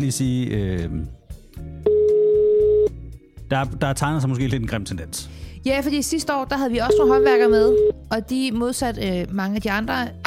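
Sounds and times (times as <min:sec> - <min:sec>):
speech: 0:00.0 - 0:01.7, 0:03.5 - 0:10.2
telephone ringback tone: 0:01.9 - 0:03.0, 0:06.9 - 0:08.0.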